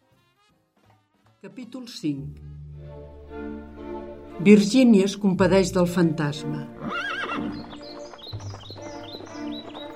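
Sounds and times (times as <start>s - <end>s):
speech: 1.4s - 2.6s, 4.4s - 7.1s
horse whinnying with a high wavering neigh: 6.8s - 7.7s
horse hooves clip-clopping during a horseback ride through meadows: 6.8s - 9.9s.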